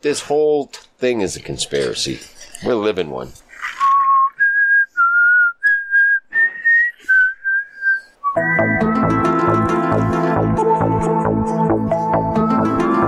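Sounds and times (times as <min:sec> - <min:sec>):
speech: 0:00.0 - 0:03.4
person whistling a short clear melody: 0:03.8 - 0:11.3, 0:12.0 - 0:13.0
loud full-band music: 0:08.4 - 0:13.0.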